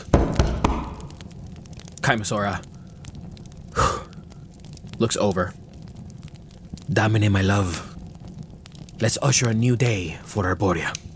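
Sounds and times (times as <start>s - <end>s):
knuckles rapping on a door: 0.1s - 1.1s
speech: 2.1s - 2.7s, 5.0s - 5.6s, 6.9s - 7.9s, 9.0s - 11.0s.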